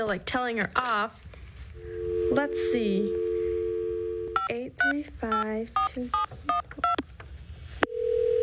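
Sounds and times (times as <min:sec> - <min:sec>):
speech: 0:00.0 - 0:03.3, 0:04.7 - 0:06.5
steady phone dial tone: 0:01.8 - 0:04.5, 0:07.9 - 0:08.4.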